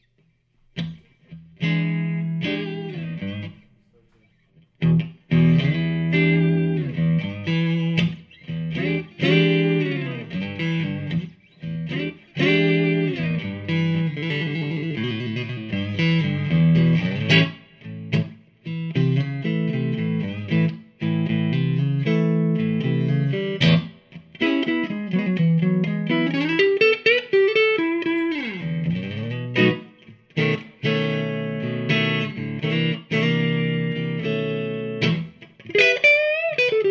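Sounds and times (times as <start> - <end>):
Fender Custom Shop 1957 Stratocaster relic solid body electric guitar: 0.7 - 36.8.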